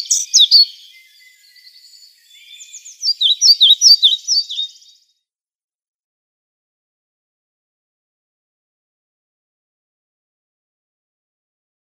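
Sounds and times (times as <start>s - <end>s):
European pied flycatcher song: 0.0s - 5.2s.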